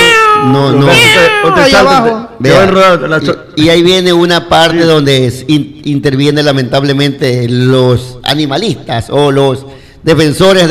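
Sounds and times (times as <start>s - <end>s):
person imitating a cat with whiny meows: 0.0s - 2.2s
speech: 0.4s - 10.6s.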